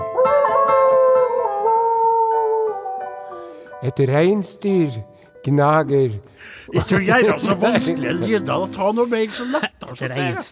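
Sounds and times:
person imitating a wolf howl: 0.2 - 3.2
speech: 3.8 - 10.5
laughter: 6.6 - 10.5.

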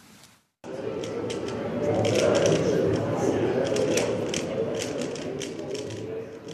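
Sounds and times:
low murmur of noise: 0.6 - 6.5
plastic puzzle cube being twisted quickly by fingers: 1.0 - 3.0, 3.6 - 6.5.

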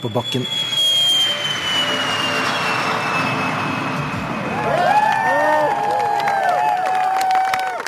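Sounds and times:
speech: 0.0 - 0.6
hybrid rocket motor of a spaceplane firing: 0.0 - 7.1
excited voices shouting and cheering: 4.5 - 7.8.

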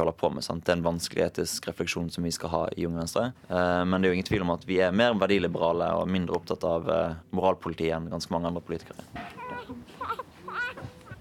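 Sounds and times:
speech: 0.0 - 9.8
newborn babies crying: 9.2 - 11.1.

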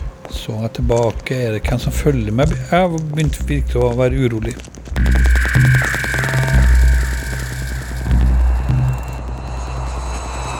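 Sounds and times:
speech: 0.5 - 5.2
airplane engine drone on a flight to Norway: 5.0 - 10.5
sustained whining tone: 5.0 - 10.5.

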